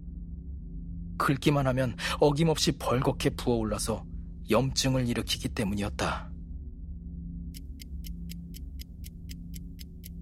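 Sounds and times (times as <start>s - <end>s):
low rumbling noise: 0.0s - 7.6s
speech: 1.2s - 6.3s
clock ticking: 7.6s - 10.2s.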